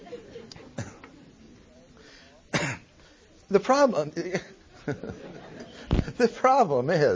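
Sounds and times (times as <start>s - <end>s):
laughter: 0.0s - 1.6s, 4.2s - 6.4s
person coughing with sharp rasping coughs: 2.5s - 2.9s
speech: 3.5s - 7.1s.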